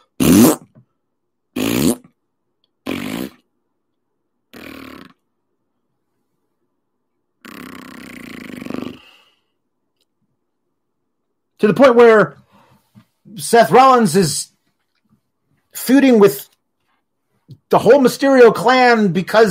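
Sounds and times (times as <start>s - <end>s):
fart noises: 0.0s - 0.9s, 1.5s - 2.2s, 2.8s - 3.5s, 4.5s - 5.3s, 7.4s - 9.1s
speech: 11.6s - 12.4s, 13.3s - 14.5s, 15.8s - 16.5s, 17.7s - 19.4s.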